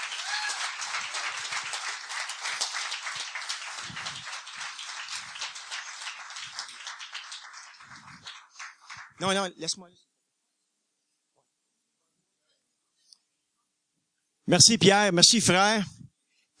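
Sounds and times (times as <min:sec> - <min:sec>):
audience applauding with many hands clapping: 0:00.0 - 0:09.4
speech: 0:09.2 - 0:10.1, 0:14.5 - 0:16.0.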